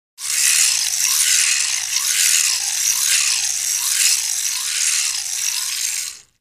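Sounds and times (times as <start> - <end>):
large electric motor straining: 0.2 - 6.3.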